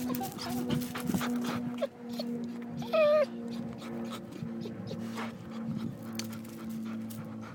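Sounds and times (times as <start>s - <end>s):
guide dog whimpering and whining: 0.0s - 1.0s, 1.6s - 5.1s
steady hum: 0.0s - 7.5s.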